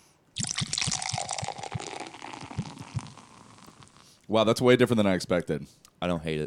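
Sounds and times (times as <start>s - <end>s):
beer pouring into a glass: 0.4s - 4.0s
speech: 4.3s - 6.4s.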